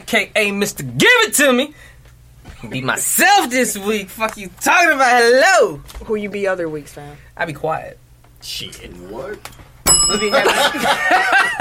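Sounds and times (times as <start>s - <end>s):
speech: 0.1s - 1.9s, 2.6s - 11.5s
bell struck with a bright ding: 9.9s - 10.9s
people laughing and chuckling: 10.2s - 11.5s.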